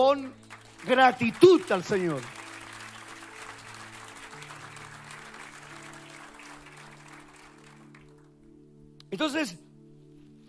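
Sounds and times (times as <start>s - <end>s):
speech: 0.0s - 2.4s, 9.1s - 9.6s
audience applauding: 0.4s - 8.4s.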